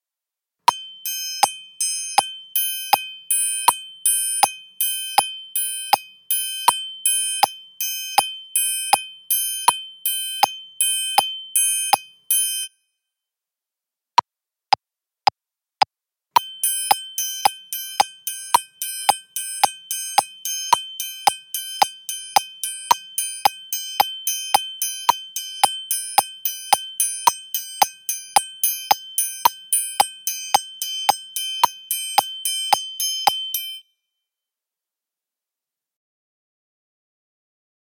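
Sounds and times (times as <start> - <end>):
triangle: 0.7 - 13.1, 16.4 - 34.1.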